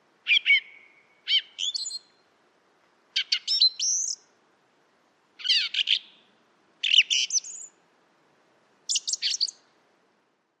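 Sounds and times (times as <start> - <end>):
Song thrush singing phrases of whistles, clicks and chirps: 0.3 - 2.1, 3.2 - 4.2, 6.9 - 7.7, 8.9 - 9.6.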